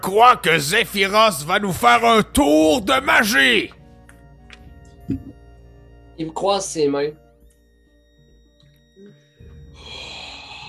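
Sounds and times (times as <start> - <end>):
speech: 0.0 - 3.8, 5.1 - 5.3, 6.2 - 7.2
faint low tones: 3.6 - 9.9
deep breath drawn in during a magic trick: 9.7 - 10.6.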